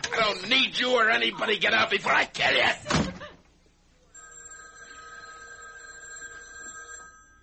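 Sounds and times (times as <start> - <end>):
speech: 0.3 - 3.1
house telephone ringing with electronic trill: 4.1 - 7.4.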